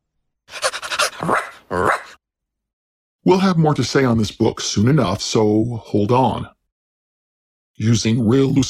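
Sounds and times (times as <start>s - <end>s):
person imitating dog panting: 0.5s - 1.7s
person imitating dog barks: 0.5s - 2.2s
speech: 3.3s - 6.6s, 7.8s - 8.6s.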